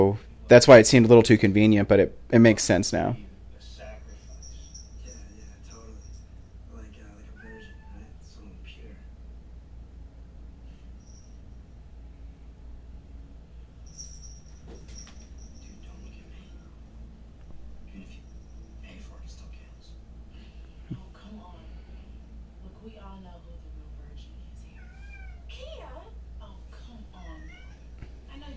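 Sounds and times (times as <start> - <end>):
speech: 0.0 - 3.3
steady low hum: 0.0 - 24.8
female cat meowing in drawn-out wavering cries: 7.2 - 8.2, 24.8 - 25.6, 27.2 - 27.9.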